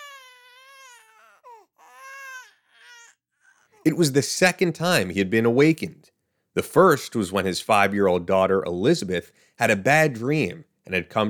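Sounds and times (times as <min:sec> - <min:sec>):
child crying loudly: 0:00.0 - 0:03.2
speech: 0:03.8 - 0:11.2.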